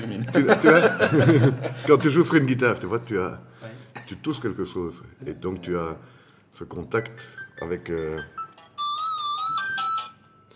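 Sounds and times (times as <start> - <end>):
speech: 0.0 - 8.4
laughter: 0.1 - 2.2
telephone ringtone playing a short bright electronic melody: 7.0 - 10.5.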